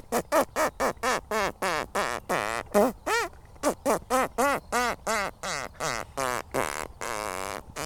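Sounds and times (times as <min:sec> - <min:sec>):
person imitating a hare's call through a split lip: 0:00.1 - 0:07.8.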